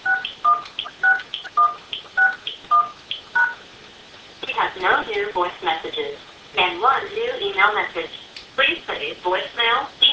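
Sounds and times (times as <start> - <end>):
telephone keypad tones entering a voicemail PIN: 0.0 - 3.6
speech: 4.7 - 10.0.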